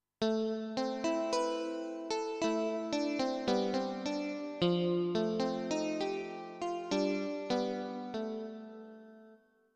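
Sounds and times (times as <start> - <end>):
chorus guitar: 0.2 - 9.4.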